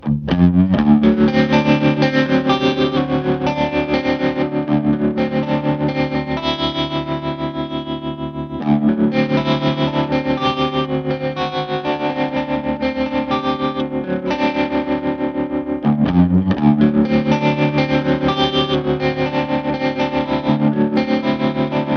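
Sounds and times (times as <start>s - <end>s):
electric guitar with tremolo: 0.0s - 21.9s.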